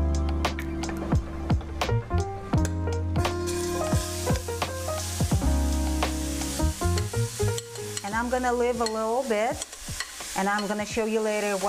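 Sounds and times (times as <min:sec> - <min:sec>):
rhythmic music: 0:00.0 - 0:10.9
beets frying in oil in a pan over medium heat: 0:03.3 - 0:11.6
speech: 0:08.3 - 0:09.7, 0:10.4 - 0:11.6.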